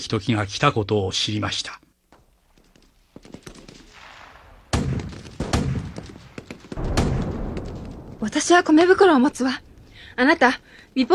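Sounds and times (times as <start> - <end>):
speech: 0.0 - 1.8, 8.2 - 11.1
sharp cracks of explosions: 2.6 - 10.2
rumbling: 3.5 - 11.1
bombs and rockets exploding near a village under attack: 3.8 - 10.2
heavy booming blasts: 4.0 - 10.7.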